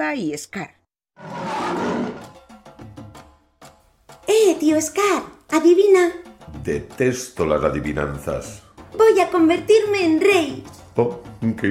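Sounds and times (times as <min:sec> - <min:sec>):
speech: 0:00.1 - 0:02.3, 0:04.5 - 0:11.6
lion roaring and grunting: 0:01.2 - 0:02.4.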